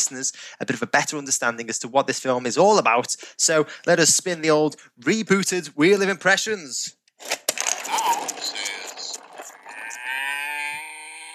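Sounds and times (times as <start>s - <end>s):
speech: 0.1s - 7.4s
distorted cow mooing: 9.7s - 11.3s.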